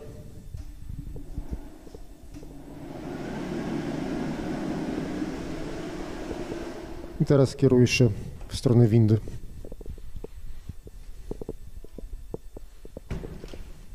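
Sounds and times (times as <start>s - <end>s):
dryer blowing in a bathroom: 0.0s - 8.0s
room noise: 0.0s - 13.9s
speech: 7.2s - 9.4s.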